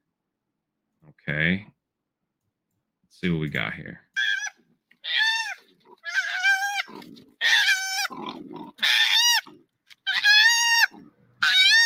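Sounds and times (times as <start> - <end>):
speech: 1.1 - 1.8, 3.1 - 4.0
two koalas kicked out of a tree crying and screaming: 4.2 - 11.8.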